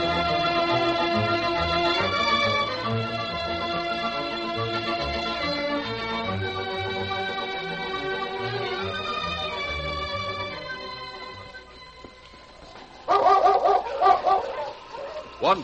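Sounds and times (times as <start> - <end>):
sustained musical tones: 0.0 - 15.6
dog barking excitedly: 13.1 - 15.4.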